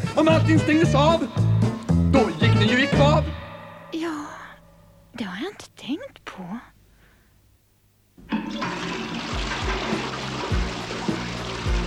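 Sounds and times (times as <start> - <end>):
speech: 0.2 - 1.5, 2.1 - 4.4, 5.2 - 6.7
toilet flushing: 8.3 - 11.8
swirling water with gurgling bumps: 8.5 - 11.8.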